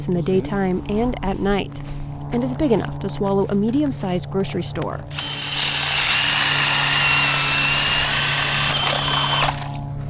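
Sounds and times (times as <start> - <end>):
speech: 0.0 - 5.3
powered auger grinding into ice: 5.1 - 9.7.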